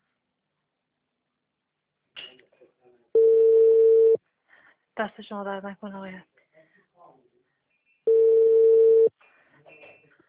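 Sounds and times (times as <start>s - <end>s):
steady telephone tone from a call cutting out on a faulty phone: 3.2s - 4.2s, 8.1s - 9.1s
speech: 5.0s - 6.3s.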